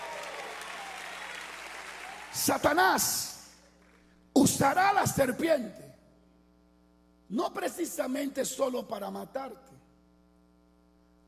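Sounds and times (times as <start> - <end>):
congregation applause during a church sermon: 0.0 - 3.6
speech: 2.4 - 3.4, 4.4 - 5.9, 7.3 - 9.8.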